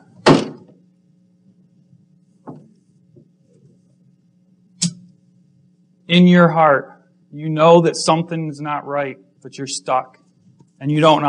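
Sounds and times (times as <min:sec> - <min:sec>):
low steady hum: 0:00.0 - 0:11.2
heavy thuds pounding on a door: 0:00.2 - 0:00.7
speech: 0:06.1 - 0:10.2, 0:10.8 - 0:11.2.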